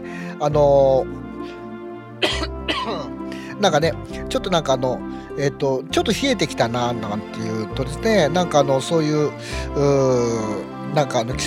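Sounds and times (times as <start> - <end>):
speech: 0.4 - 1.6, 2.8 - 11.4
person with a cold coughing: 2.2 - 3.2.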